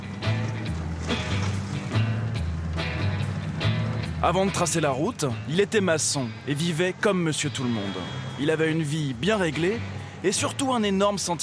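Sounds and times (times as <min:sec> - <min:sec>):
heavy old truck engine coughing and sputtering: 0:00.0 - 0:11.4
speech: 0:04.2 - 0:11.4.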